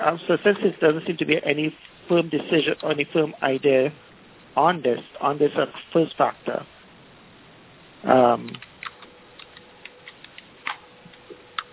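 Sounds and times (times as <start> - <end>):
speech: 0.0 - 6.7, 8.0 - 8.7
light computer keyboard typing during a meeting: 8.5 - 11.7.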